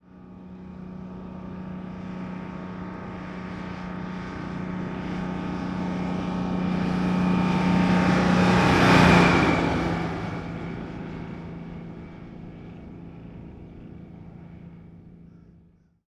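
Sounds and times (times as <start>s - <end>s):
1948 diesel truck passing by fast outside: 4.4s - 12.2s.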